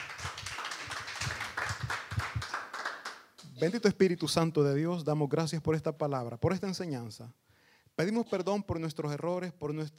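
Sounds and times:
audience applauding: 0.0 - 3.2
speech: 3.6 - 7.4, 8.0 - 9.9.

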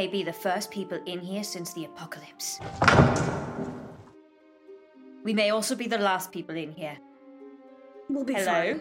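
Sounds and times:
speech: 0.0 - 3.8, 5.2 - 7.1, 8.1 - 8.8
heavy door slamming shut: 2.6 - 4.1.

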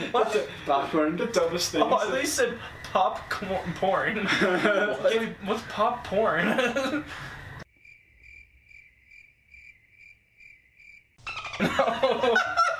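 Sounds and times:
people laughing: 0.0 - 2.8, 3.9 - 7.3, 11.4 - 12.7
cricket chirping sound effect: 0.0 - 12.7
speech: 0.1 - 7.4, 11.6 - 12.6.

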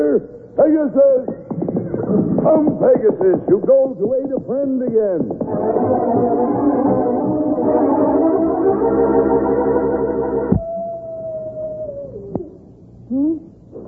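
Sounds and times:
speech: 0.2 - 1.4, 2.4 - 10.6, 13.1 - 13.5
several wolves howling together: 5.5 - 12.6.

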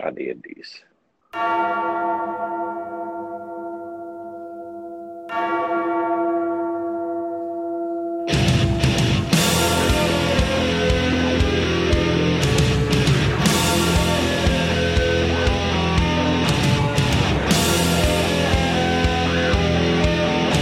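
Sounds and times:
speech: 0.0 - 2.6
deep bell tolling: 1.4 - 20.5
loud distorted heavy metal guitars: 8.3 - 20.5.

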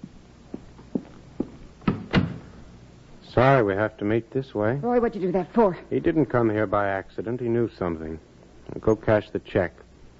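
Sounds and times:
soft footsteps: 0.0 - 2.0
door swinging shut with a latching knock: 1.9 - 2.4
speech: 3.4 - 9.8.

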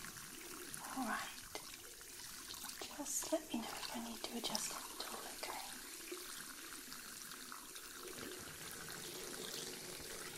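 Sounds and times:
water rinsing shampoo out of hair during a wash and scalp massage: 0.0 - 10.3
speech: 3.0 - 5.0.

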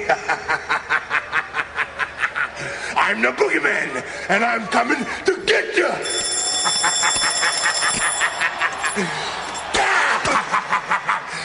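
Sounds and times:
laughter: 0.0 - 3.0, 6.4 - 11.4
speech: 0.1 - 0.7, 3.1 - 6.2, 9.0 - 9.2
alarm clock ringing: 6.0 - 9.7.

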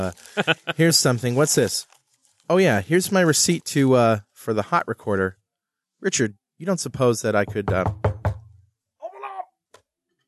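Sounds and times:
speech: 0.0 - 1.9, 2.5 - 5.4, 6.0 - 8.1
heavy knock on a door: 7.4 - 8.7.

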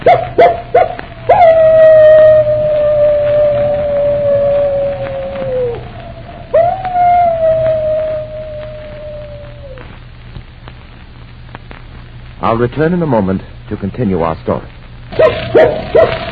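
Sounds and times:
faint low hum: 0.0 - 16.3
wolf-dog howling: 0.1 - 9.9, 15.2 - 16.3
speech: 12.5 - 16.1.

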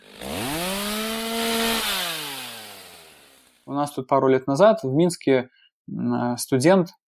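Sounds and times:
chainsaw engine revving: 0.0 - 3.7
speech: 3.8 - 7.0.

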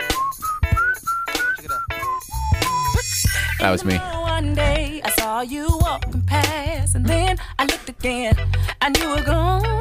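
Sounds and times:
person whistling a tune without moving lips: 0.0 - 3.6
speech: 3.6 - 9.7.

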